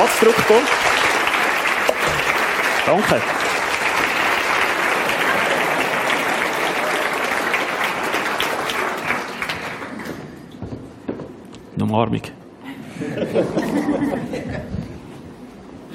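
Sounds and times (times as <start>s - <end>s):
speech: 0.0s - 1.0s, 2.9s - 3.4s, 11.8s - 12.4s, 13.0s - 14.8s
sustained audience applause: 0.0s - 10.4s
laughter: 5.0s - 7.1s, 12.7s - 15.0s.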